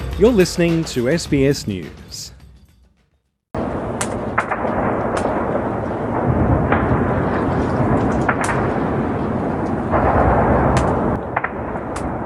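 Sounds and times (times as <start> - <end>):
speech: 0.2 - 2.3
missile strikes and shelling explosions: 3.5 - 12.2.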